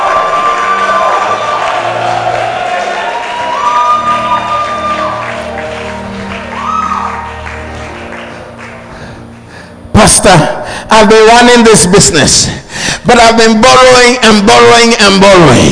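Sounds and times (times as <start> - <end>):
loud whoops from the crowd: 0.0 - 5.6, 6.3 - 7.4
large audience shouting and cheering in agreement: 0.0 - 8.6
speech: 10.0 - 15.7.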